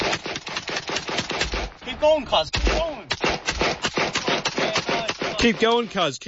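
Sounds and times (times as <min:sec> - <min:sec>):
rapid AK-47 gunfire on a city street: 0:00.0 - 0:06.2
people talking: 0:01.8 - 0:03.1, 0:04.2 - 0:06.2.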